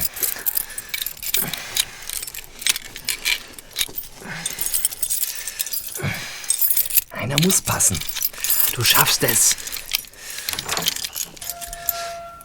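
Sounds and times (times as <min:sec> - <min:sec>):
bunch of keys jangling and clinking: 0:00.0 - 0:12.4
speech: 0:07.3 - 0:08.2, 0:08.8 - 0:09.7
faint scraping: 0:11.3 - 0:12.4.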